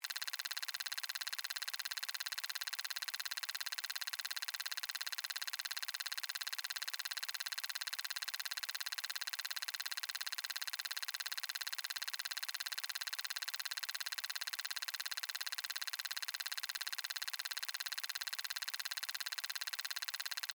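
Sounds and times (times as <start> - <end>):
science fiction robot machine device clicks: 0.0 - 20.5.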